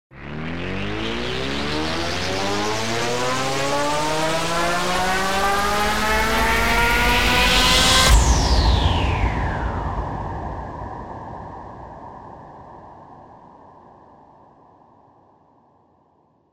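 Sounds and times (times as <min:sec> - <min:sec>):
raucous rising impact: 0:00.3 - 0:13.2.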